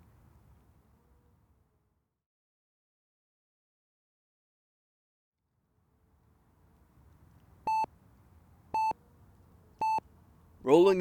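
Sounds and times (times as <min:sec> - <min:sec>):
digital alarm clock beeping: 0:07.7 - 0:07.9, 0:08.8 - 0:09.0, 0:09.8 - 0:10.0.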